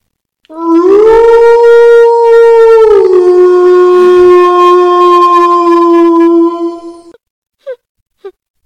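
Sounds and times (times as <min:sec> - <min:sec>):
computer-generated wolf howl: 0:00.5 - 0:07.1.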